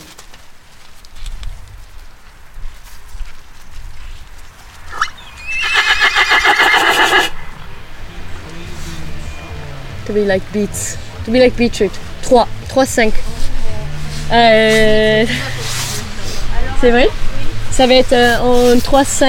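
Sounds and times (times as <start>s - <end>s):
horse neighing: 4.9s - 7.5s
speech: 10.1s - 13.4s, 14.3s - 15.6s, 16.8s - 17.2s, 17.8s - 19.2s.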